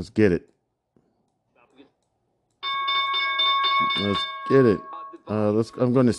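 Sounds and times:
speech: 0.0 - 0.5, 4.0 - 6.1
loud bell ringing: 2.6 - 6.1.

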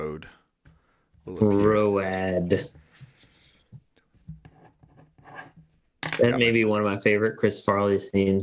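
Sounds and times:
speech: 0.2 - 0.4, 1.2 - 2.8, 6.2 - 8.4
pen scratching on paper writing a number: 4.3 - 5.7.

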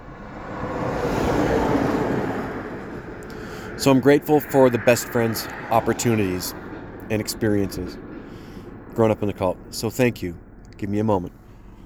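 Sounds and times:
big truck passing: 0.0 - 11.8
speech: 3.8 - 8.0, 9.0 - 11.4.

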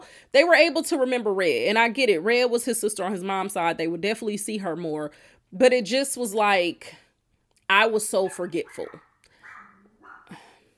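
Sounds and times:
speech: 0.3 - 7.0, 7.7 - 9.1
dog barking: 8.2 - 10.3.

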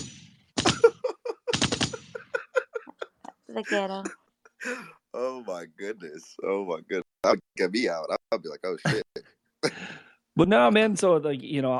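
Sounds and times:
soundboard gunshot sound effect: 0.0 - 0.9, 1.5 - 2.2
laughter: 0.6 - 5.0, 8.8 - 9.9
speech: 3.6 - 9.3, 10.4 - 11.7.

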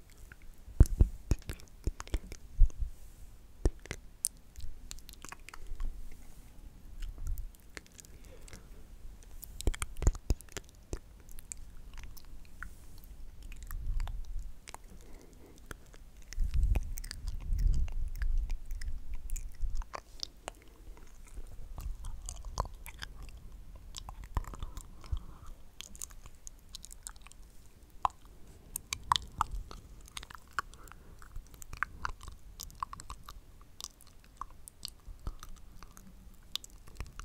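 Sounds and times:
wet mouth clicks, smacks and chewing-like squishes: 0.0 - 2.8, 3.6 - 6.3, 7.0 - 37.2
breathing: 2.8 - 3.4, 14.9 - 15.9, 24.5 - 25.6, 29.8 - 32.1.

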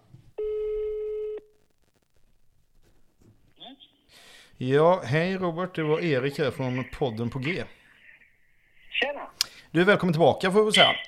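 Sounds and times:
telephone ringback tone while a call is being placed: 0.4 - 1.5
speech: 4.6 - 7.8, 9.7 - 11.0.

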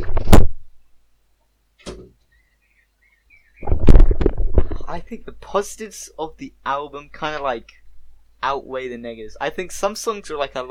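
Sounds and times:
faint chirping: 0.8 - 3.8, 5.9 - 9.2
door swinging and shutting with a loud thud: 1.8 - 2.2
rattling clattering noise: 1.8 - 2.2, 3.6 - 5.1
speech: 4.9 - 7.8, 8.4 - 10.7.

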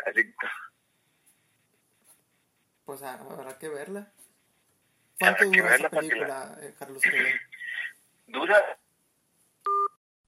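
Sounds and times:
speech: 0.1 - 0.6, 2.9 - 4.3, 5.2 - 7.5, 8.3 - 8.8
telephone two-tone electronic beep as a call is cut off: 9.7 - 10.0.

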